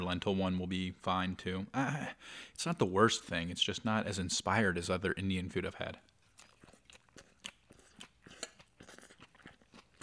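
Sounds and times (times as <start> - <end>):
speech: 0.0 - 6.1
person chewing salad eaten with a fork from a plate: 6.1 - 10.0.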